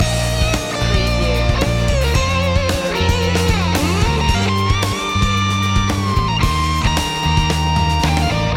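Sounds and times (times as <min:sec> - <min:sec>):
looped music chorus with solo and no piano: 0:00.0 - 0:08.5.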